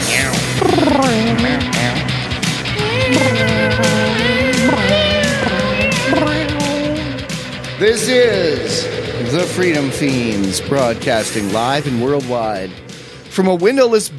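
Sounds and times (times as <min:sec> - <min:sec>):
people imitating cat meows: 0:00.0 - 0:07.2
speech: 0:07.9 - 0:14.1.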